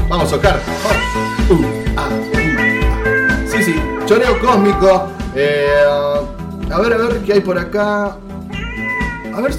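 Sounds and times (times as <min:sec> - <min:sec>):
speech: 0:00.2 - 0:02.1, 0:04.1 - 0:08.3, 0:09.3 - 0:09.5
loud upbeat radio section intro jingle: 0:00.2 - 0:07.8
person shouting or singing over the music: 0:00.9 - 0:05.9.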